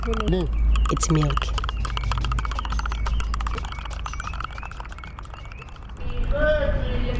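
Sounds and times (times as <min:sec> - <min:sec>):
speech: 0:00.0 - 0:01.6
spoon rattling against a glass: 0:00.0 - 0:07.1.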